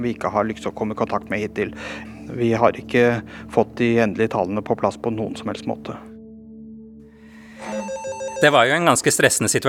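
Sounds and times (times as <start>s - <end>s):
speech: 0.0s - 6.1s, 8.4s - 9.6s
telephones ringing: 7.6s - 9.2s.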